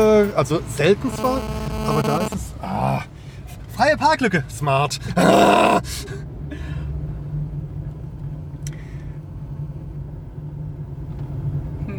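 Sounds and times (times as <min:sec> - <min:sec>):
speech: 0:00.0 - 0:03.1, 0:03.8 - 0:06.2
car engine humming in an echoey parking garage in Koblenz: 0:00.0 - 0:11.3.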